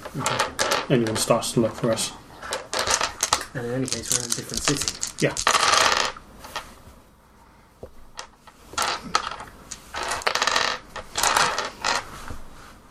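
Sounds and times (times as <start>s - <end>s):
dice rattling and clattering across a hard tabletop: 0.0s - 6.7s, 8.2s - 12.1s
speech: 0.1s - 2.2s, 3.6s - 5.6s.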